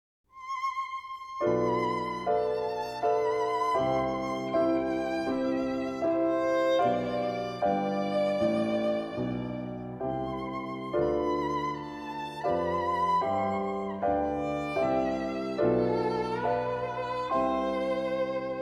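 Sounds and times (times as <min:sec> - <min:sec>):
chorale for violin and piano: 0:00.3 - 0:18.6.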